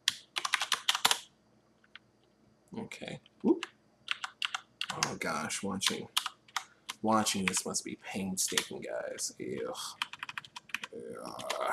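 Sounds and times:
keystrokes on a computer keyboard while code is typed: 0.0 - 1.3, 3.6 - 5.2, 5.8 - 7.7, 8.4 - 8.8, 9.5 - 11.7
speech: 2.7 - 3.8, 5.0 - 6.2, 7.0 - 10.1, 10.9 - 11.7.

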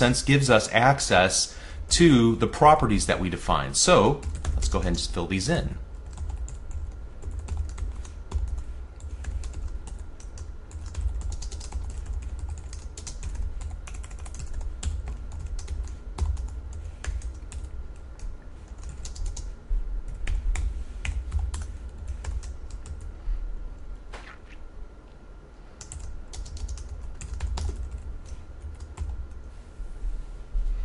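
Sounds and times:
speech: 0.0 - 5.8
low constant hum: 0.0 - 30.8
computer keyboard typing: 4.2 - 4.8, 6.0 - 19.5, 20.1 - 23.1, 25.8 - 29.2.

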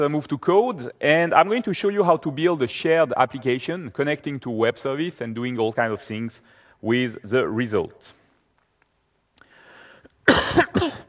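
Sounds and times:
speech: 0.0 - 8.2, 10.3 - 11.0
harsh coughs: 10.2 - 11.0.

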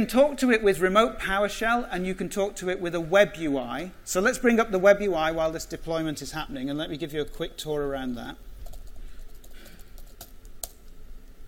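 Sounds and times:
speech: 0.0 - 8.5
typing on a computer keyboard while logging in to a Raspberry Pi: 8.6 - 10.8.

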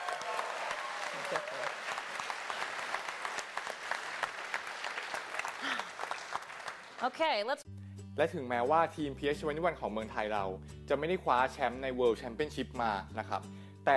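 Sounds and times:
audience applause for a team that won a game category at a world championship: 0.0 - 7.3
speech: 1.3 - 2.0, 7.0 - 13.9.

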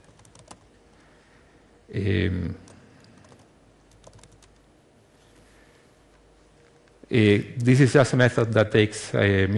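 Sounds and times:
computer keyboard clicks while writing code: 0.0 - 0.6, 2.7 - 4.6
speech: 1.9 - 2.7, 7.1 - 9.5.

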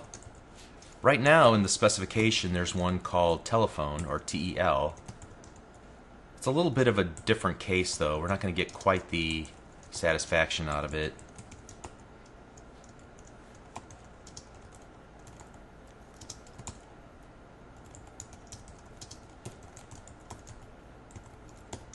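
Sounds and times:
typing a note on a computer keyboard: 0.0 - 1.0, 4.9 - 5.8, 10.7 - 16.8, 17.8 - 21.9
speech: 1.0 - 5.1, 6.4 - 11.2.

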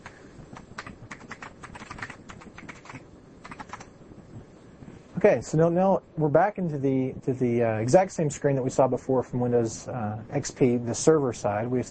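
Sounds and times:
typing a password on a computer keyboard: 0.6 - 3.9
speech: 5.2 - 11.8.

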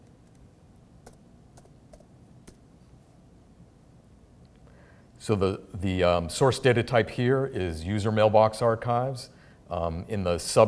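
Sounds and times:
low steady hiss: 0.0 - 10.6
typing on a computer keyboard: 1.0 - 2.6
speech: 5.2 - 10.6.

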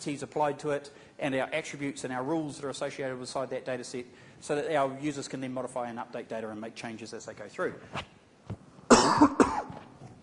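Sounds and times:
speech: 0.0 - 8.2
person coughing: 8.9 - 9.9.

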